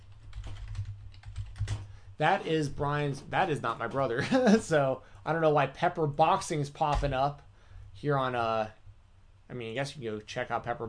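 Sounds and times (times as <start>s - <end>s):
typing on a computer keyboard: 0.0s - 1.8s
speech: 2.2s - 7.4s, 8.0s - 8.8s, 9.5s - 10.8s.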